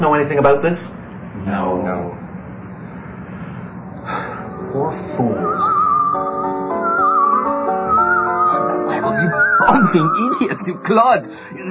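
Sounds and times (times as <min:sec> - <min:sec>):
speech: 0:00.0 - 0:02.2, 0:04.7 - 0:05.8, 0:09.2 - 0:11.6
sustained layered tonal music: 0:03.9 - 0:11.6
man whistling: 0:05.2 - 0:10.6.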